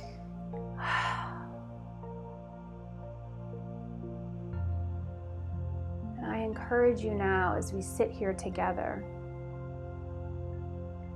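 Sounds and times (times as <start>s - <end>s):
low sustained tones: 0.0s - 11.1s
deep breath in: 0.8s - 1.6s
speech: 6.7s - 9.2s.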